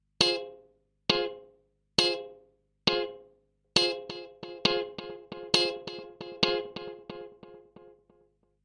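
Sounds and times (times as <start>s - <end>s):
generated rhythms with delay echo: 0.2s - 1.4s, 2.0s - 2.3s, 3.8s - 7.9s.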